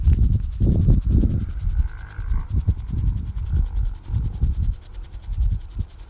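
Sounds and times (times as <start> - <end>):
grasshoppers chirping in a field: 0.0 - 6.0
gusty low rumbling: 0.0 - 6.0.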